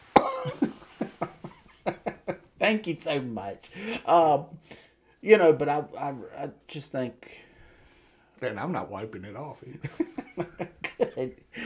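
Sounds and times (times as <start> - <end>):
person coughing into a microphone: 0.1 - 0.8
speech: 0.4 - 0.7, 2.6 - 7.5, 8.4 - 11.6
laughter: 0.4 - 4.6, 9.7 - 11.6.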